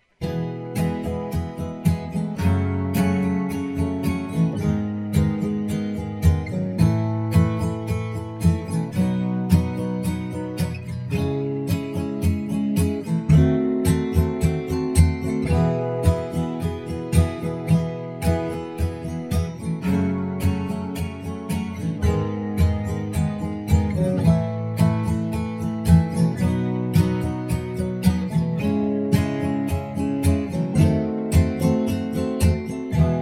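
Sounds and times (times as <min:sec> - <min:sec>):
E major chords: 0:00.0 - 0:33.2.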